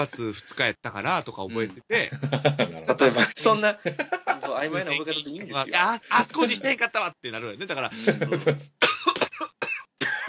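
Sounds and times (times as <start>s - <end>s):
speech: 0.0s - 8.8s
laughter: 2.1s - 4.9s, 7.9s - 10.2s
person gasping between coughs: 7.9s - 8.3s
person choking and coughing: 8.0s - 10.2s.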